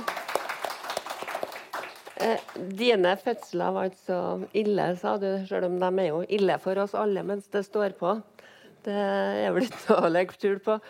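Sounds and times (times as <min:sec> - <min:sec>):
small group applauding: 0:00.0 - 0:02.7
speech: 0:02.2 - 0:10.8.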